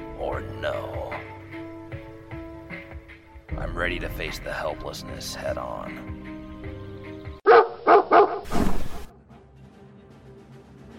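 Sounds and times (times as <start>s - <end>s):
speech: 0.4s - 1.3s, 3.6s - 6.2s
dog barking: 7.4s - 8.5s.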